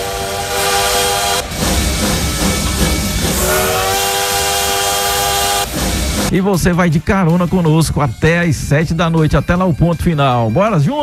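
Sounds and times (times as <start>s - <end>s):
train horn blaring in sustained tones: 0.0s - 6.3s
rumble of a passing train: 0.0s - 9.2s
speech: 6.3s - 11.0s.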